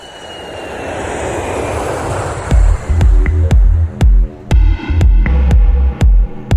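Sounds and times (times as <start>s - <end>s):
engines of two airplanes taking off from Florida: 0.0s - 5.4s
deep thumping pulses: 2.4s - 6.5s.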